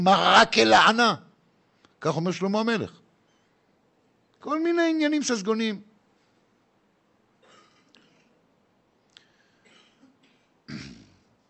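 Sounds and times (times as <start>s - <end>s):
speech: 0.0s - 1.2s, 2.0s - 3.0s, 4.4s - 5.9s
raspy coughs: 7.4s - 8.4s, 9.6s - 11.2s
throat clearing: 7.4s - 8.4s, 9.6s - 11.3s.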